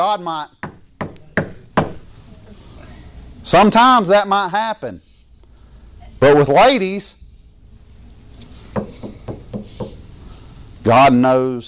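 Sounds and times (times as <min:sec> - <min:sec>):
speech: 0:00.0 - 0:00.6, 0:03.4 - 0:05.1, 0:06.2 - 0:07.2, 0:10.8 - 0:11.6
sharp loud knocks on a wooden surface: 0:00.6 - 0:02.0, 0:08.7 - 0:10.0.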